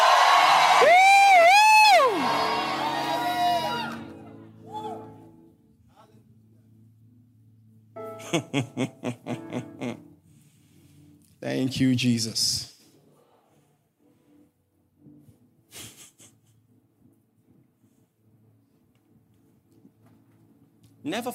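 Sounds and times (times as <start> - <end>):
crowd shouting and cheering: 0.0 - 5.3
laughter: 8.2 - 10.1
speech: 8.3 - 9.7, 11.6 - 12.7, 21.1 - 21.3.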